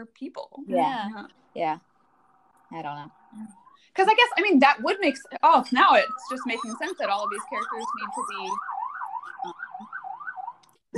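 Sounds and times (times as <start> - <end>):
speech: 0.0 - 1.9, 2.7 - 8.7, 9.4 - 9.7
emergency vehicle siren passing outside in New York City: 3.1 - 10.6.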